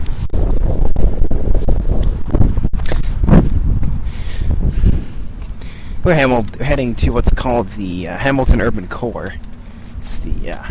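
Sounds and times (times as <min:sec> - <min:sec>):
wind blowing outdoors buffeting the microphone: 0:00.0 - 0:10.6
speech: 0:06.1 - 0:10.6.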